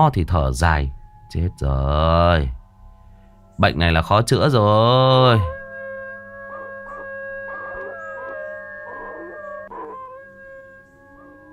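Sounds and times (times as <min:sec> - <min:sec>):
speech: 0:00.0 - 0:02.6, 0:03.6 - 0:05.6
person imitating a dog's howl: 0:06.4 - 0:11.5.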